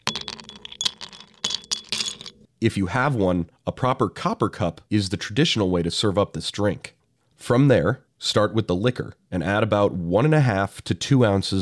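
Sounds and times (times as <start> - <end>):
ice cubes clinking into a glass for a vodka cocktail: 0.0 - 2.4
speech: 2.6 - 11.6.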